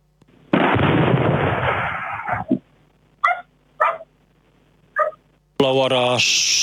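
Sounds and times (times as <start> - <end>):
explosion of object hitting the ground: 0.5 - 2.5
dog barking: 2.2 - 2.6, 3.2 - 4.1, 5.0 - 5.2
speech: 5.6 - 6.6.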